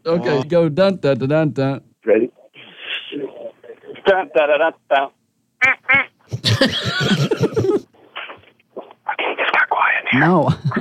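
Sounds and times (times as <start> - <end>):
speech: 0.0 - 2.3, 4.1 - 7.5, 10.1 - 10.8
duck call quacking: 5.6 - 6.1
laughter: 6.3 - 7.9.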